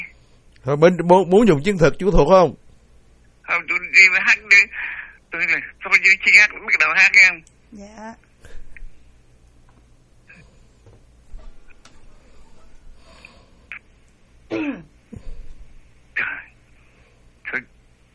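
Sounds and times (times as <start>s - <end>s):
slightly hissy background: 0.0s - 18.1s
speech: 0.6s - 2.6s, 3.5s - 8.2s, 17.5s - 17.7s
man clearing throat: 14.5s - 15.3s, 16.2s - 16.6s
man coughing: 14.5s - 15.3s, 16.2s - 16.6s.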